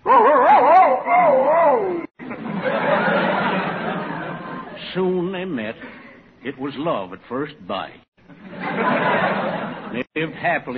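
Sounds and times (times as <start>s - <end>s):
man imitating a male dog answering a female dog's call: 0.0s - 2.1s
laughter: 2.2s - 5.0s, 8.3s - 10.7s
speech: 6.4s - 8.0s, 8.8s - 10.7s.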